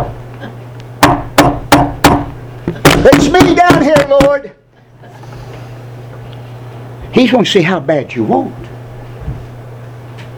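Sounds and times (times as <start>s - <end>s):
knocks on a hard surface: 1.0s - 4.4s
speech: 3.1s - 4.6s, 7.1s - 8.6s.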